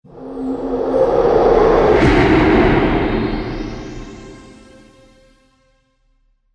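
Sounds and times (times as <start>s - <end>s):
monster trailer impact hit: 0.2s - 5.6s.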